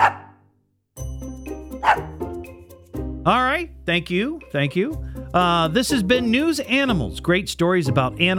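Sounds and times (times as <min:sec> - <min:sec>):
dog barking: 0:00.0 - 0:00.4, 0:01.8 - 0:02.2
speech: 0:03.2 - 0:08.3.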